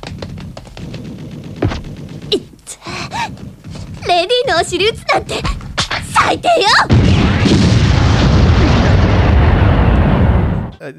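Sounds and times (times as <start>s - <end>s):
speech: 2.3s - 2.5s, 4.2s - 5.6s, 6.3s - 7.0s
rocket fired at guards exploding and destroying a guard tower: 6.9s - 10.8s.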